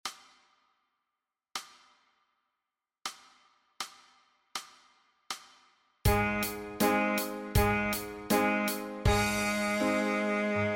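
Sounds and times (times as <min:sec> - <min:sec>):
saxophone note F: 0:06.1 - 0:10.7.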